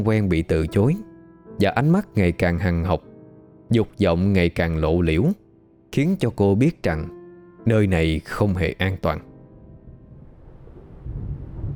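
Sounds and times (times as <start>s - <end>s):
speech: 0.0s - 3.1s, 3.7s - 9.3s
howling wind at night: 9.6s - 11.7s
thunder rumble on a windy night: 9.6s - 11.7s
heavy rain on a windy night: 10.6s - 11.7s.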